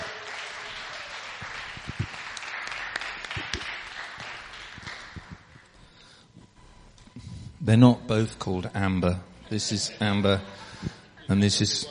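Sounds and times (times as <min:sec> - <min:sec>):
audience cheering and applauding: 0:00.0 - 0:05.5
speech: 0:07.7 - 0:11.8.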